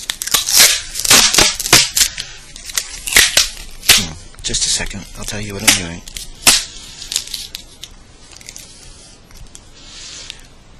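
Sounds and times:
adhesive tape being torn: 0.0 - 4.2, 5.2 - 8.8
adhesive tape being wrapped around a person's wrists to bind them: 0.0 - 10.5
speech: 4.5 - 6.2.

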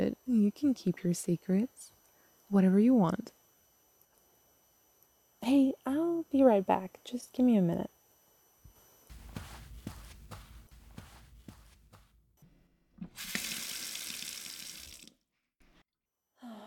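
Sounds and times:
speech: 0.0 - 3.4, 5.4 - 8.0
footsteps: 8.7 - 12.3
cool water gushing from a sink tap: 13.2 - 15.1.

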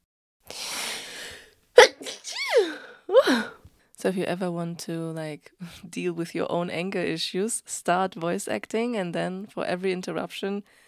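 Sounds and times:
person sneezing: 0.5 - 3.6
speech: 3.3 - 10.8.

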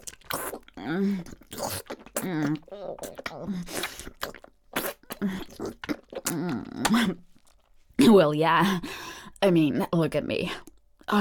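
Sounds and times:
wet slurping and sucking mouth sounds: 0.0 - 6.8
speech: 0.8 - 4.4, 6.4 - 7.3, 8.2 - 11.1.

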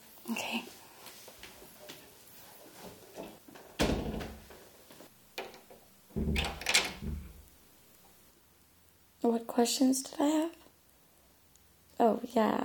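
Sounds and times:
door being pushed shut: 3.2 - 4.6, 5.4 - 7.5
door rattling as it settles into the frame: 3.8 - 4.5, 5.4 - 7.4
speech: 9.3 - 10.4, 12.3 - 12.6.

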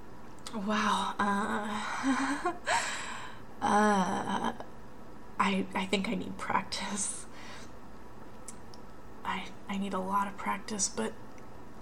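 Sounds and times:
speech: 0.5 - 3.0, 3.6 - 4.6, 5.4 - 7.3, 9.3 - 11.2
person breathing heavily catching their breath: 1.8 - 3.4.

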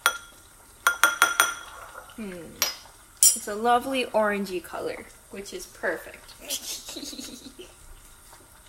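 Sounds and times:
bowl of dissolved powder clinking as it is tilted: 0.0 - 1.9, 2.6 - 3.6
speech: 2.2 - 2.8, 3.4 - 7.2.

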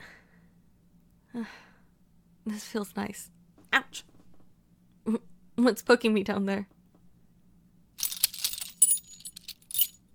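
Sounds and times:
speech: 1.4 - 1.7, 2.4 - 4.1, 5.0 - 6.7
keys jangling and clinking: 8.0 - 10.0.

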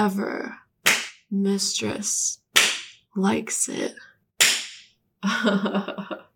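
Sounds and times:
speech: 0.0 - 0.6, 1.3 - 2.4, 3.2 - 4.1, 5.2 - 6.2
slap on buttocks: 0.9 - 1.2, 2.6 - 3.0, 4.4 - 4.9.

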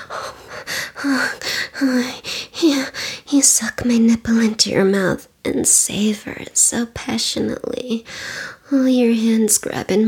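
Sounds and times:
woman gasping: 0.0 - 3.3, 8.1 - 8.6
speech: 1.0 - 10.0.

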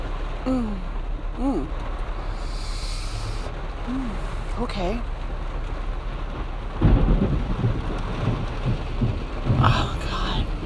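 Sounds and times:
heavy rain: 0.0 - 10.6
speech: 0.4 - 1.9, 3.9 - 5.2
thunder rumbling: 3.7 - 10.6.

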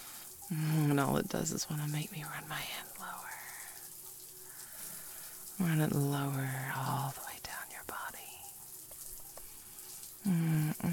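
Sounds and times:
running shower water: 0.0 - 10.9
speech: 0.5 - 3.2, 5.6 - 7.2, 10.2 - 10.9
person whispering: 0.5 - 3.8, 5.6 - 8.6, 10.2 - 10.9.

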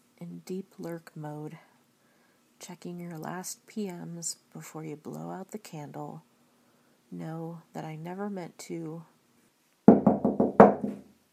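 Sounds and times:
speech: 0.5 - 1.7, 2.6 - 6.3, 7.1 - 9.1
knocking on a door late at night: 9.9 - 11.1.

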